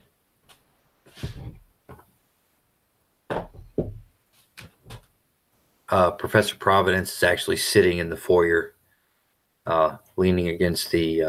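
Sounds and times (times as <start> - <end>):
faint dull knocking on a door: 3.3 - 4.1
speech: 5.9 - 8.8, 9.6 - 11.2.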